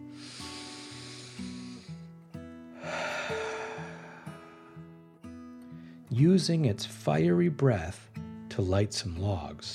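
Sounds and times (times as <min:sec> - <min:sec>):
soft music: 0:00.0 - 0:09.7
deep breath in and out: 0:00.1 - 0:02.1, 0:02.8 - 0:05.0
speech: 0:06.2 - 0:09.7.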